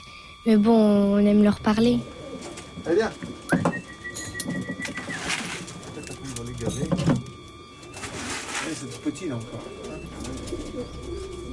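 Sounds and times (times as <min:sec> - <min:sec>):
faint hum: 0:00.0 - 0:11.5
pigeons cooing kept by a pigeon fancier: 0:00.0 - 0:11.5
speech: 0:00.4 - 0:02.2, 0:02.8 - 0:03.6, 0:06.6 - 0:07.2, 0:08.7 - 0:11.5.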